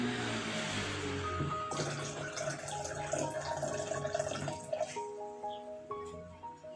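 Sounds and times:
gentle sustained musical tones: 0.0 - 6.3
small stream trickling and splashing: 1.7 - 4.9.

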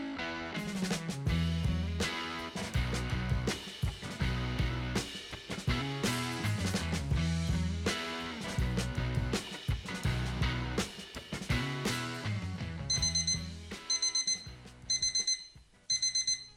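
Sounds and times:
musical intro: 0.0 - 15.4
alarm clock shrill electronic beeping: 12.9 - 16.5.

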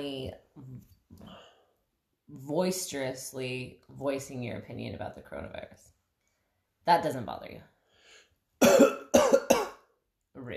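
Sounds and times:
speech: 2.3 - 5.9, 6.9 - 7.7, 8.6 - 9.0, 10.4 - 10.5
harsh coughs: 8.6 - 9.9.

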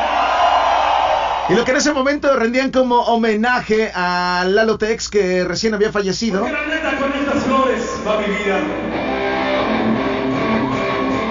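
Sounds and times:
large festival crowd cheering and shouting at a live concert: 0.0 - 2.0, 8.0 - 11.3
speech: 1.5 - 8.9.

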